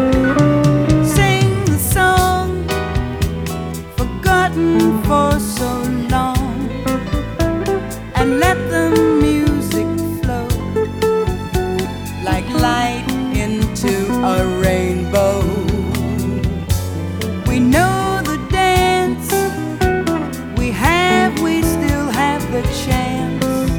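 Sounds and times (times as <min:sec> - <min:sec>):
woman singing jazz: 0:00.2 - 0:23.7.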